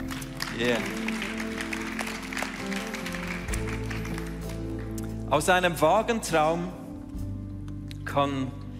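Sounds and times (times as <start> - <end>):
crowd applauding: 0.0 - 5.0
speech: 0.6 - 1.1, 5.3 - 6.8, 8.1 - 8.6.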